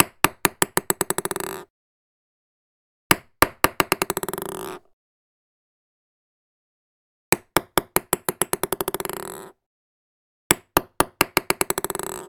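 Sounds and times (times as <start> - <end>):
ping-pong ball: 0.0 - 1.7, 3.1 - 4.8, 7.3 - 9.5, 10.5 - 12.2.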